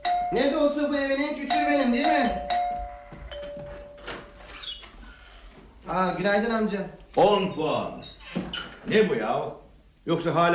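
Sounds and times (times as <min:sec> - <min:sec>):
doorbell buzzing with button held pressed: 0:00.0 - 0:04.6
speech: 0:00.3 - 0:02.6, 0:05.9 - 0:08.1, 0:08.9 - 0:10.5.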